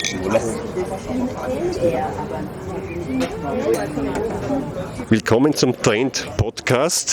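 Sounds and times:
glasses clinking in a restaurant beer garden: 0:00.0 - 0:00.6
murmur of many voices in a restaurant beer garden in Vienna: 0:00.0 - 0:07.1
speech: 0:00.0 - 0:07.1.

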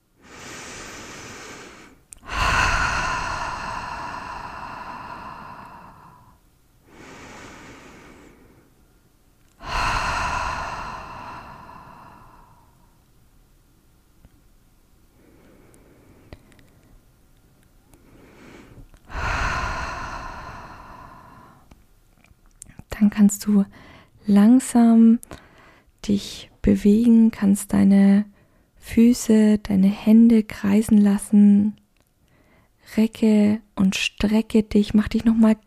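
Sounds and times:
strong deep breaths: 0:00.2 - 0:08.9, 0:09.5 - 0:13.0, 0:15.1 - 0:17.1, 0:17.9 - 0:21.8, 0:23.7 - 0:24.2, 0:25.3 - 0:26.0, 0:32.2 - 0:32.8
speech: 0:23.0 - 0:25.4, 0:26.0 - 0:31.8, 0:32.9 - 0:35.6.

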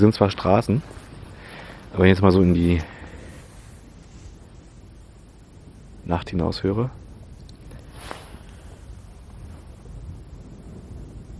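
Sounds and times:
speech: 0:00.0 - 0:01.0, 0:01.9 - 0:03.0, 0:06.1 - 0:07.0
microphone buffeting: 0:00.0 - 0:04.5, 0:07.2 - 0:11.0
wind blowing outdoors at night: 0:00.0 - 0:11.3.

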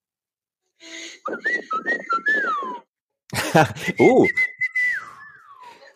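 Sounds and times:
speech: 0:00.8 - 0:02.9, 0:03.5 - 0:04.5
human family signature whistle with falling end: 0:00.9 - 0:03.0, 0:03.8 - 0:05.9
laughter: 0:01.4 - 0:04.2.

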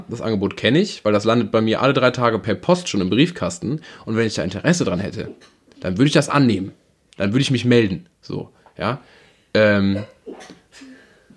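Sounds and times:
speech: 0:00.1 - 0:10.9
single quiet sneeze: 0:09.9 - 0:11.0.

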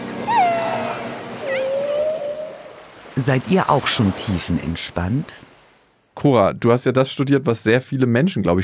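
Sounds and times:
ocean hiss: 0:00.0 - 0:05.8
underwater calls from a whale or dolphin: 0:00.1 - 0:02.9
speech: 0:03.2 - 0:05.5, 0:06.2 - 0:08.6.

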